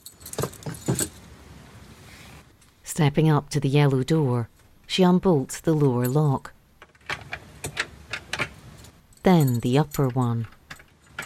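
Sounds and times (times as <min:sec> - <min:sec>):
set of keys jangling pulled from under a plant pot: 0:00.0 - 0:01.3, 0:07.1 - 0:11.2
speech: 0:03.0 - 0:06.6, 0:09.2 - 0:10.6.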